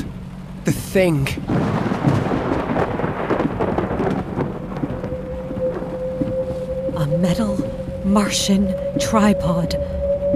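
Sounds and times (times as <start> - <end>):
heavy rain pouring: 0.0 - 9.0
speech: 0.7 - 1.7, 7.2 - 10.0
deep rolling thunder: 1.4 - 10.3
faint sustained tone: 5.0 - 10.3.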